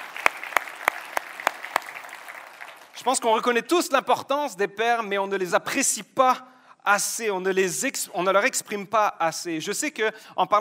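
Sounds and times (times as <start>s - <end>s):
congregation clapping at a Father's Day morning service: 0.0s - 3.6s
speech: 3.0s - 10.6s.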